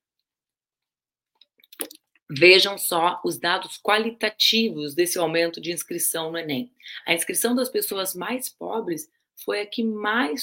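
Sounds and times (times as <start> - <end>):
wet mouth clicks: 1.7 - 2.0
speech: 2.3 - 10.4.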